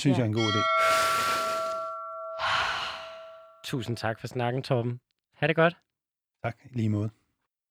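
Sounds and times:
speech: 0.0s - 1.1s, 3.7s - 7.2s
long deep breath drawn in close to the microphone: 0.7s - 3.6s.

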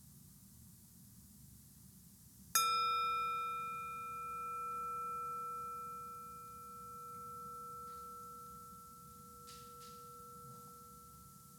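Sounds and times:
low hum: 0.0s - 11.5s
meditation bell ringing: 2.6s - 11.5s.

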